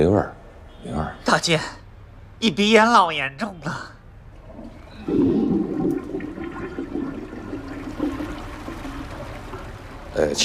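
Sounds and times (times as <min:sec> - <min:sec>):
speech: 0:00.0 - 0:01.8, 0:02.4 - 0:04.0, 0:10.2 - 0:10.4
upstairs toilet water rushing down through a drain pipe: 0:04.6 - 0:10.4.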